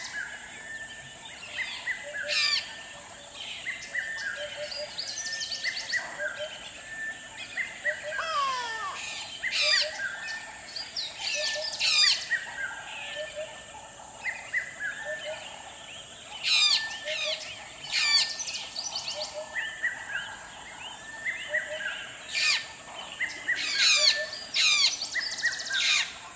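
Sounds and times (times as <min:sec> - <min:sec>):
varied dawn chorus in a dry riverbed in the South African savanna: 0:00.0 - 0:26.3.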